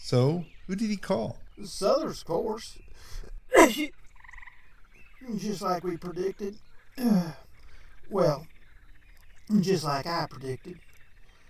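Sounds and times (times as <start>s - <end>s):
speech: 0.1s - 4.0s, 5.2s - 7.5s, 8.1s - 8.5s, 9.5s - 10.9s
croaking sneeze: 3.5s - 3.9s.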